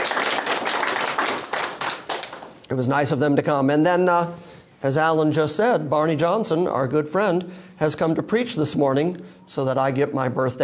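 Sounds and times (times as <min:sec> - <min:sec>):
congregation applause at a Sunday church service: 0:00.0 - 0:02.5
speech: 0:02.7 - 0:10.6.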